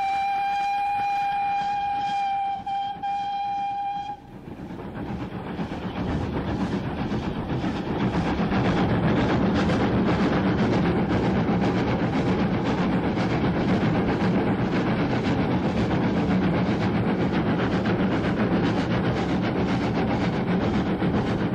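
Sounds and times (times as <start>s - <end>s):
train warning whistle: 0.0s - 4.3s
train chugging and rumbling while working hard: 0.0s - 21.5s.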